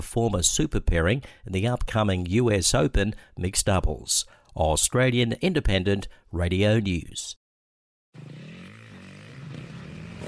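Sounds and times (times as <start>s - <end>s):
speech: 0.0s - 7.4s
motocross motorcycle engine revving: 8.2s - 10.2s.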